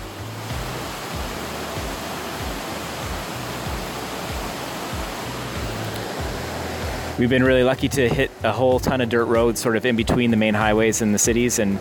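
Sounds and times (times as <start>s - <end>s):
river flowing at a confluence of rivers beside thermal pools: 0.0s - 11.8s
speech: 7.2s - 11.8s.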